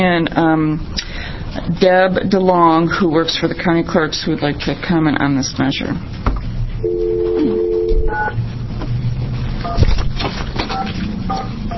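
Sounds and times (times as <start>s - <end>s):
speech: 0.0s - 6.3s
low hum: 0.0s - 11.7s
steady phone line dial tone: 6.8s - 8.4s.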